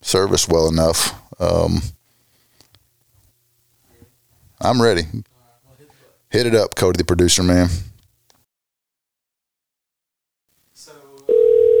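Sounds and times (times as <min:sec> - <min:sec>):
speech: 0:00.1 - 0:02.0, 0:04.6 - 0:05.3, 0:06.3 - 0:07.9
telephone ring of an outgoing call: 0:11.3 - 0:11.7.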